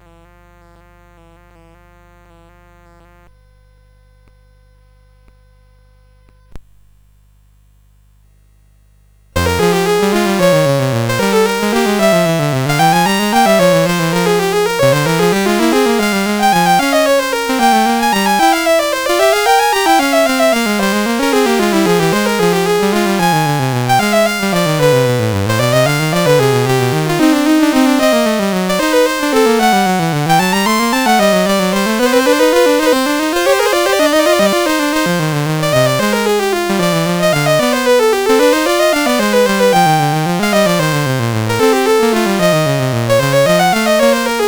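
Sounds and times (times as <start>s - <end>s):
music on a CSG8580R5 chip: 9.4s - 44.4s.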